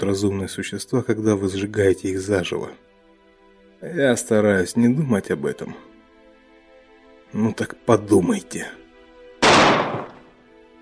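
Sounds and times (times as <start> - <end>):
speech: 0.0 - 2.9, 3.8 - 5.9, 7.3 - 8.8
single sharp gunshot: 9.4 - 10.3.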